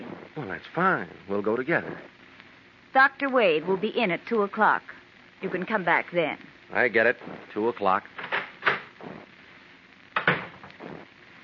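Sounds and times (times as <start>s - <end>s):
speech: 0.4s - 2.2s, 2.9s - 8.2s
office door shutting with a soft thump: 10.2s - 10.6s.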